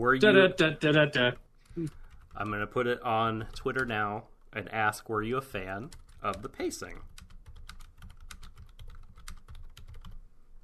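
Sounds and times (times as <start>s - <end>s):
speech: 0.0s - 7.2s
rapid intense typing on a computer keyboard: 1.2s - 4.2s, 5.5s - 10.2s.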